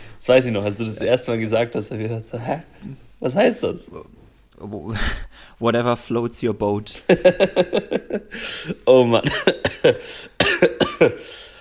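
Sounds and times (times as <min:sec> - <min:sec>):
speech: 0:00.2 - 0:11.5
raspy breath: 0:08.3 - 0:08.8, 0:10.0 - 0:10.4, 0:11.2 - 0:11.5
person coughing: 0:09.2 - 0:11.4.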